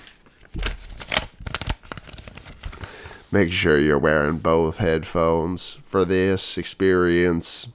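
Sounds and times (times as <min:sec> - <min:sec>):
paper being crinkled as an ASMR sound: 0:00.0 - 0:03.3
speech: 0:03.3 - 0:07.7.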